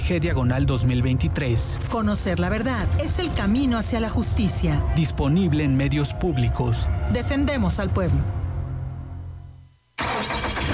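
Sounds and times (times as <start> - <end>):
speech: 0.1 - 8.4
car engine starting: 10.0 - 10.7.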